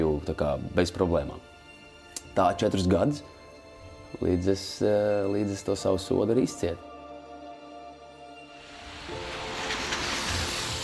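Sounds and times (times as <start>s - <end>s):
speech: 0.2s - 1.5s, 2.4s - 3.3s, 4.1s - 6.9s
evening city centre street traffic rumble: 8.5s - 10.8s.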